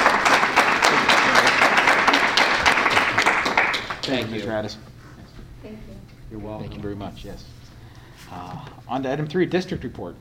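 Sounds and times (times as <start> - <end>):
audience applauding: 0.0 - 4.5
speech: 4.1 - 4.9, 5.6 - 7.6, 8.3 - 10.1.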